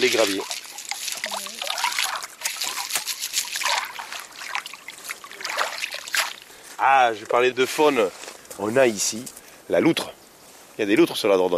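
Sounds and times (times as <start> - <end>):
speech: 0.0 - 0.6, 6.8 - 10.2, 10.8 - 11.5
Dordogne river water trickling over small pebbles in France: 0.0 - 8.1.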